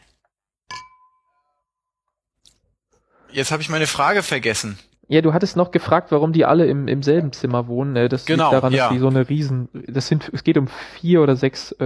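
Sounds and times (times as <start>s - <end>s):
glasses clinking in a toast: 0.7s - 1.6s
speech: 3.3s - 11.8s.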